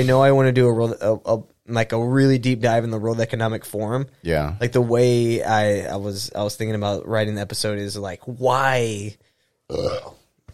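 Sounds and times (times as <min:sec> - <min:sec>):
speech: 0:00.0 - 0:10.2
loud guttural burp: 0:09.7 - 0:10.2.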